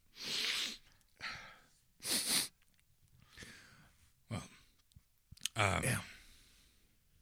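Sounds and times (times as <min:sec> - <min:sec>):
loud breathy sniffing: 0:00.1 - 0:00.9, 0:02.0 - 0:02.6
speech: 0:05.6 - 0:06.1.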